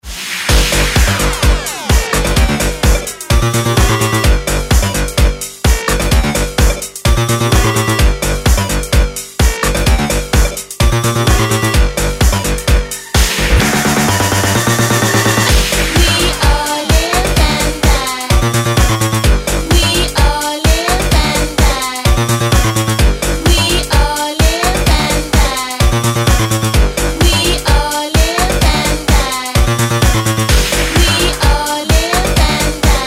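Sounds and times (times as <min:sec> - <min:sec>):
Dirty South club music: 0:00.1 - 0:33.0.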